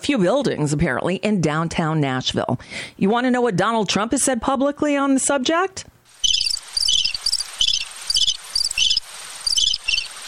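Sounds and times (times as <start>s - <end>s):
speech: 0.0s - 5.9s
crickets chirping: 6.2s - 10.1s.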